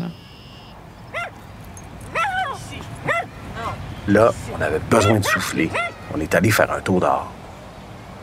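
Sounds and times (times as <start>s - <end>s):
low rumble of outdoor noise: 0.0s - 8.2s
dog yipping in a park: 1.1s - 1.4s, 2.1s - 3.8s, 4.9s - 6.2s
speech: 4.1s - 7.4s.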